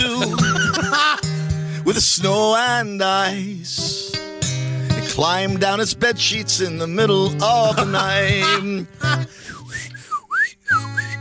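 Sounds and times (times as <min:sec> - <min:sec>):
laughter: 0:00.0 - 0:01.4, 0:07.6 - 0:09.3
speech: 0:00.2 - 0:00.4, 0:02.0 - 0:04.2, 0:05.2 - 0:09.4
person whistling a short gliding tune: 0:09.4 - 0:11.2.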